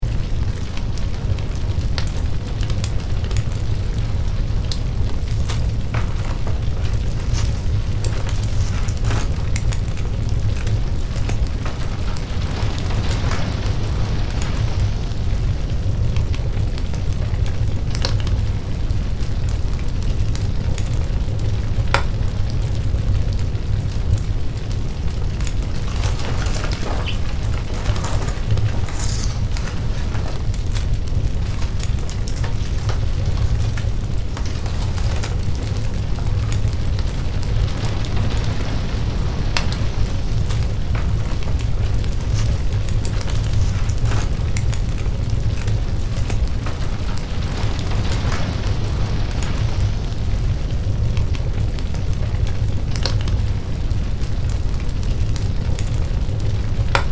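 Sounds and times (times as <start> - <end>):
burning house with intense fire and raging flames: 0.0 - 57.1.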